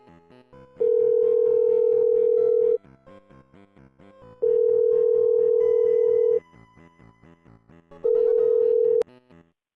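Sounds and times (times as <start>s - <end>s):
phone line ringback tones on an outgoing call: 0.8s - 2.8s, 4.4s - 6.4s, 8.0s - 9.0s.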